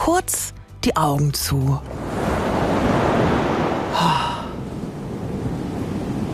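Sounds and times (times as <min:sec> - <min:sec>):
speech: 0:00.1 - 0:02.0
ocean waves crashing on shore: 0:01.8 - 0:06.3.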